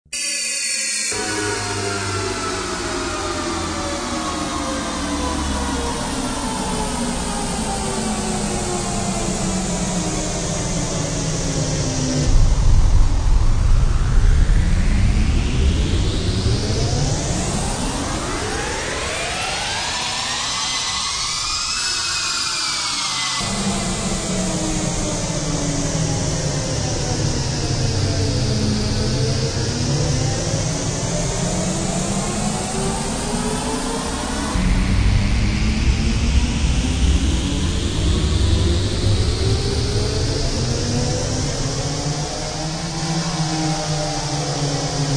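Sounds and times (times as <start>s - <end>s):
analogue synthesizer glide: 0.2s - 45.1s.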